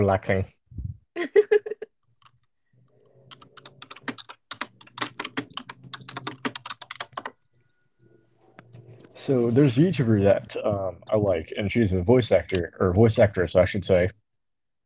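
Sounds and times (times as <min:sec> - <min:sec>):
speech: 0:00.0 - 0:00.6, 0:09.2 - 0:14.2
computer keyboard being typed on: 0:02.2 - 0:07.5.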